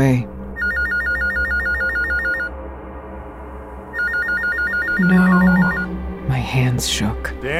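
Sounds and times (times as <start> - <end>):
speech: 0.0 - 0.3, 5.0 - 5.8, 6.5 - 7.5
telephone ringing with a rapid warbling trill: 0.6 - 2.5, 4.0 - 5.9.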